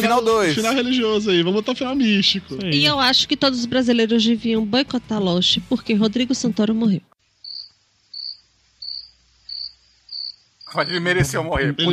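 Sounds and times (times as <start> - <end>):
speech: 0.0 - 7.1, 10.7 - 11.9
cricket chirping: 7.2 - 11.9.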